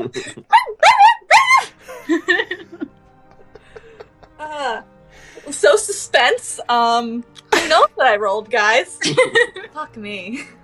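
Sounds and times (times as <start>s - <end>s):
speech: 0.0s - 0.4s, 6.2s - 10.6s
laughter: 0.0s - 10.6s
several small puppies yapping and yipping: 0.2s - 5.6s.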